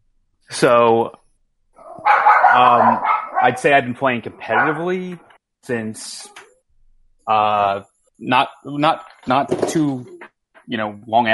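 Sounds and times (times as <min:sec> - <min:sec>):
speech: 0:00.6 - 0:01.2, 0:02.0 - 0:06.4, 0:07.2 - 0:11.3
dogs barking: 0:01.8 - 0:05.0.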